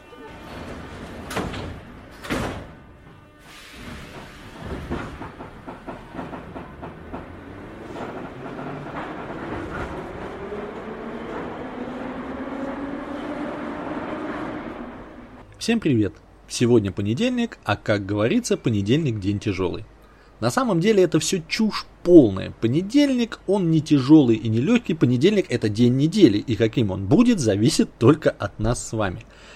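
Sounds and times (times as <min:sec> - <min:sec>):
metro train departing with rumble and hiss: 0:00.0 - 0:29.5
metro train doors thudding shut: 0:00.2 - 0:12.5
speech: 0:15.6 - 0:29.5.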